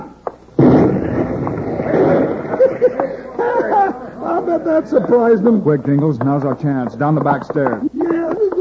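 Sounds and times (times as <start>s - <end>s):
bomb explosion: 0.6s - 2.7s
laughter: 1.7s - 5.6s, 7.7s - 8.5s
speech: 4.7s - 8.0s.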